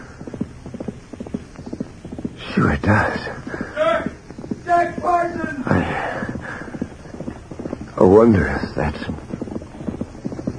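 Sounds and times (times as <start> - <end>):
horse hooves clip-clopping: 0.0 - 10.5
speech: 2.4 - 3.7, 4.7 - 6.2, 8.0 - 9.2.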